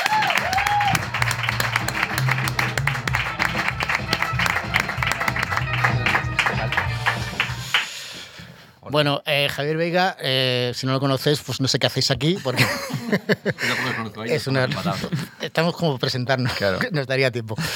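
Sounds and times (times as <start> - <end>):
studio audience applause: 0.0 - 7.9
speech: 8.9 - 17.7.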